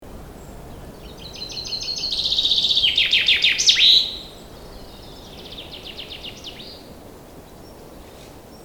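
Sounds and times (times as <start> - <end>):
common chaffinch singing: 0.4 - 6.9.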